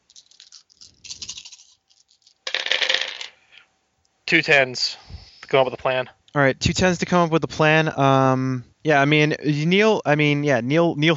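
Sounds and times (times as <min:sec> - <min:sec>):
dice clattering across a hard tabletop: 0:00.0 - 0:03.4
speech: 0:04.3 - 0:11.1.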